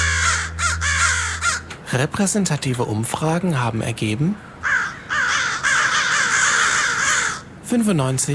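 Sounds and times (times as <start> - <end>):
crows cawing: 0.0 - 1.9, 4.4 - 7.6
speech: 1.9 - 4.5, 7.7 - 8.3.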